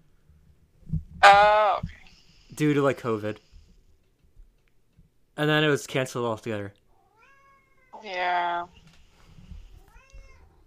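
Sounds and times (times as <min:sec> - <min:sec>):
speech: 0:01.3 - 0:02.0, 0:02.6 - 0:03.5, 0:05.4 - 0:06.8, 0:08.0 - 0:08.8
cat meowing: 0:07.1 - 0:08.8, 0:09.6 - 0:10.6.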